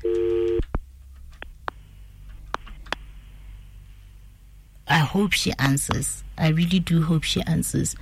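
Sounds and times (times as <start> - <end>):
steady electronic telephone line tone: 0.0 - 0.6
speech: 5.1 - 8.0.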